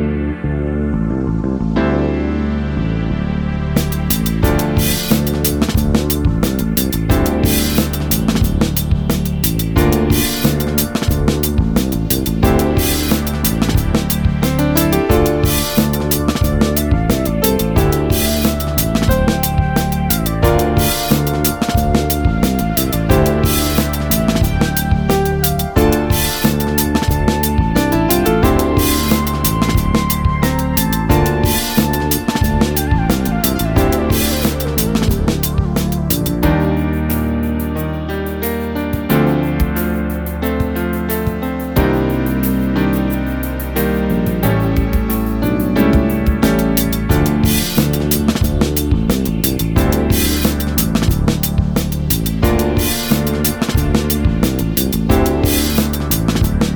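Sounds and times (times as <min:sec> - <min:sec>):
open string double bass groove backing music: 0:00.2 - 0:56.7.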